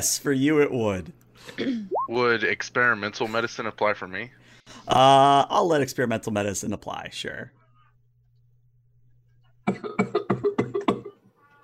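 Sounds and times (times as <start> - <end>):
speech: 0.0 - 7.6
person coughing in a harsh fit: 1.5 - 1.9, 9.7 - 11.2.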